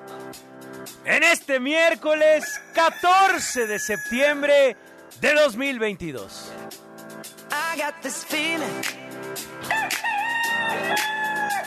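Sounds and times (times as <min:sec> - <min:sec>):
speech: 0:01.0 - 0:06.7, 0:07.8 - 0:09.5
rooster crowing: 0:02.4 - 0:04.2, 0:09.7 - 0:11.6.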